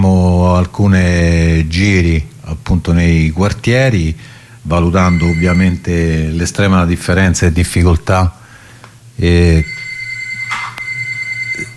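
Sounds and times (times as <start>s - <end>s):
speech: 0.6s - 8.4s, 9.2s - 9.7s
telephone ringing with a buzzy electronic ring: 5.0s - 5.8s, 9.6s - 11.7s.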